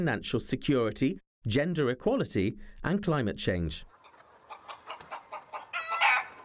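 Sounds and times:
speech: 0.0 - 3.9
rooster clucking: 4.0 - 6.4
rooster crowing: 5.6 - 6.4.

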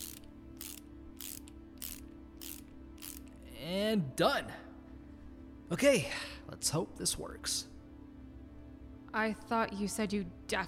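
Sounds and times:
socket wrench tightening a panel on a generator: 0.0 - 3.4
low steady hum: 0.0 - 10.6
speech: 3.6 - 4.6, 5.7 - 7.7, 9.2 - 10.6.

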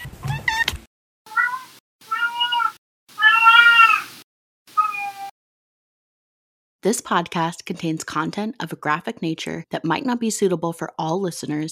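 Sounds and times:
pet cat meowing: 1.3 - 5.3
speech: 6.8 - 11.6.

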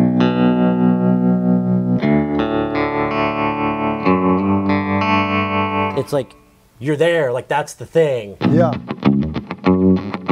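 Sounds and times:
baritone electric guitar chords with tremolo and reverb: 0.0 - 6.0, 8.4 - 10.3
speech: 6.1 - 9.8.

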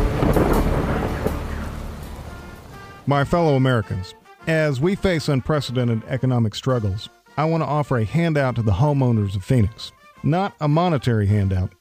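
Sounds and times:
hiss of rain or wind: 0.0 - 3.2
deep rolling thunder rumble: 0.0 - 3.4
speech: 3.1 - 11.7.

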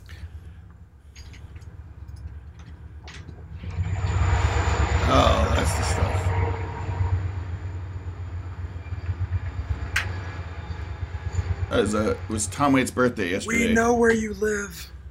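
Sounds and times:
train rumbling past: 3.4 - 15.0
train metallic squeal: 3.7 - 12.4
speech: 11.8 - 15.0.

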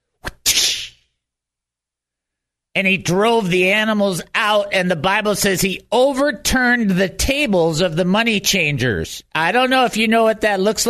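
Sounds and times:
whip made of cords cracking: 0.2 - 1.0
speech: 2.8 - 10.8.

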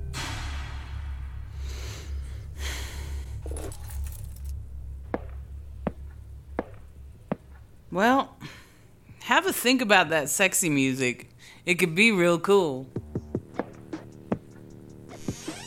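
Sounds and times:
steady low hum: 0.0 - 10.3, 12.8 - 15.4
Toyota car keys being picked up and jangling: 3.4 - 4.6
speech: 7.9 - 8.6, 9.4 - 13.0.

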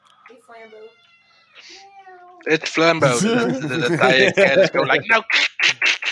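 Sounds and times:
speech: 0.5 - 6.0
cat meowing: 0.6 - 2.4
laughter: 2.5 - 6.1.

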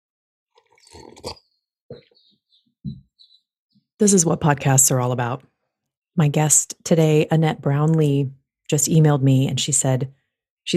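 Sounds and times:
person slurping and sipping liquid: 0.6 - 2.2
soft low gulps of swallowing: 0.6 - 3.1
speech: 0.8 - 1.4, 4.0 - 5.5, 6.2 - 10.7.

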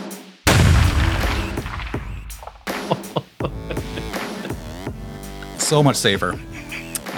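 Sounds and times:
firework exploding: 0.5 - 2.9
laughter: 2.7 - 4.9, 6.1 - 7.1
speech: 5.7 - 6.6.

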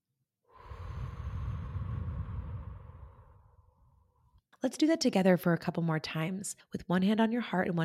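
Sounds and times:
deep breath in and out during a guided relaxation exercise: 0.5 - 4.4
speech: 4.6 - 7.8.

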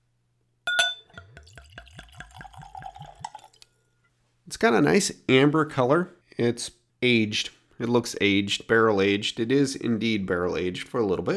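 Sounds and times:
whiskey glugging from the bottle into a glass: 0.7 - 3.7
Glencairn whiskey nosing glass clinking: 0.7 - 3.8
speech: 4.5 - 11.3.

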